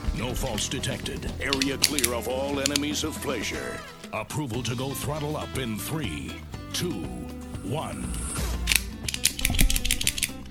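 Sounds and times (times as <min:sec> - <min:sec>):
speech: 0:00.2 - 0:08.4
cigar cutter snipping the cap of a cigar with an Ecuadorian Connecticut wrapper: 0:01.1 - 0:02.9, 0:07.1 - 0:10.4.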